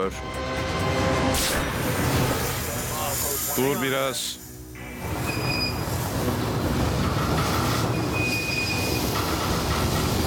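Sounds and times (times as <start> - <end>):
speech: 0.0 - 0.5, 3.6 - 4.4
heavy rumble of rolling freight rail cars: 0.5 - 10.2
freight train wheels squealing as it stops: 5.2 - 6.0, 7.4 - 9.3.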